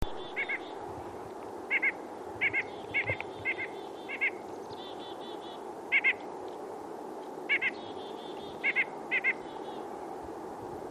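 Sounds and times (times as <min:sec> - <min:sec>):
nuthatch calling: 0:00.1 - 0:00.8, 0:01.7 - 0:06.2, 0:07.5 - 0:09.9.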